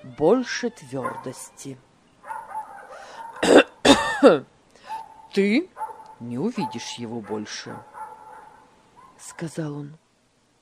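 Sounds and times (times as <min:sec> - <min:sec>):
speech: 0:00.1 - 0:01.9, 0:04.2 - 0:04.5, 0:05.3 - 0:07.9, 0:09.2 - 0:10.0
man coughing to clear his throat: 0:03.2 - 0:04.4.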